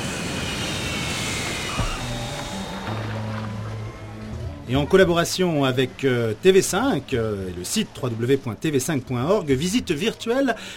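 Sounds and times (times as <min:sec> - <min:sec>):
airplane in flight on approach to land, engine roar: 0:00.0 - 0:04.9
low droning tone: 0:00.1 - 0:05.0
speech: 0:04.7 - 0:10.7.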